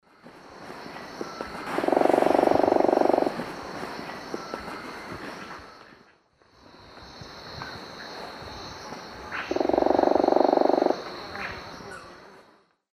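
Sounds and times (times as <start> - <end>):
Celeus grammicus drumming in eastern lowlands of South America: 1.1 - 4.6, 9.5 - 11.2.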